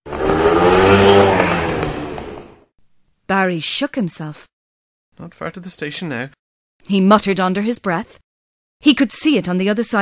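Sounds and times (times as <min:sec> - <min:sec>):
car engine roaring and revving as it drives away: 0:00.0 - 0:02.6
speech: 0:03.3 - 0:04.5, 0:05.2 - 0:08.2, 0:08.8 - 0:10.0.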